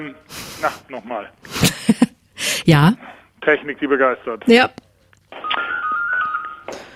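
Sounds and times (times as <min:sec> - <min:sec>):
speech: 0:00.0 - 0:04.8
mobile phone ringtone: 0:05.4 - 0:06.9.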